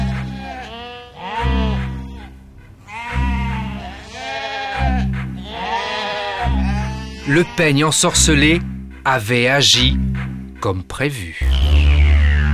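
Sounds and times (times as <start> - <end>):
several sheep bleating: 0.0 - 8.5
speech: 7.3 - 11.6.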